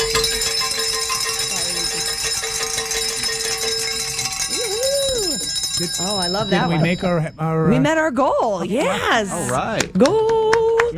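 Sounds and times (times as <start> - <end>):
bells ringing in celebration: 0.0 - 7.6
speech: 5.8 - 10.9.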